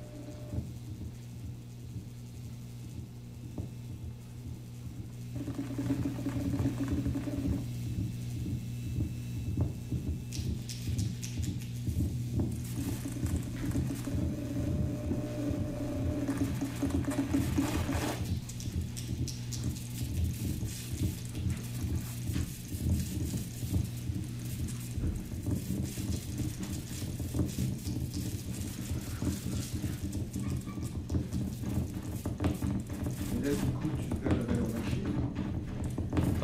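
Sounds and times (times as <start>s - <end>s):
mechanical whirring from opened-up cassette players: 0.0s - 0.8s, 5.2s - 35.1s
bursts of crackly interference hiss: 0.0s - 30.4s
electrical hum from opened-up cassette players: 0.0s - 36.4s
ticking ratchet-like clicks from cassette players: 10.2s - 11.9s.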